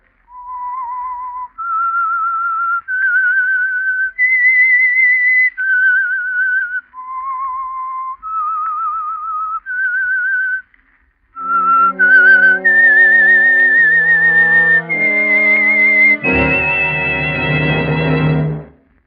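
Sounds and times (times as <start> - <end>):
lone person whistling a slow haunting melody: 0.3 - 10.6, 11.4 - 18.1
dramatic swell of orchestral chords: 11.4 - 18.8.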